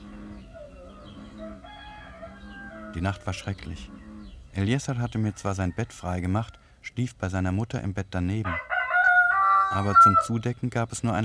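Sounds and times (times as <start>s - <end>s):
rooster crowing in the morning: 0.0s - 3.5s, 8.4s - 10.3s
speech: 2.9s - 4.0s, 4.6s - 8.7s, 9.7s - 11.2s.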